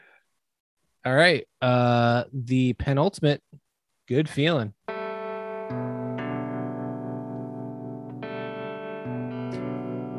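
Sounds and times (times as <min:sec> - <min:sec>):
speech: 0:01.0 - 0:04.8, 0:05.7 - 0:05.9
distorted electric chords with heavy reverb: 0:04.9 - 0:10.1.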